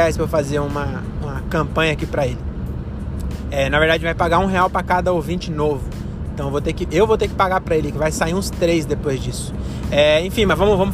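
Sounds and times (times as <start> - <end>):
speech: 0.0 - 2.5, 3.2 - 10.9
car engine rumbling while driving: 0.0 - 10.9
road noise from inside a moving vehicle: 0.0 - 10.9.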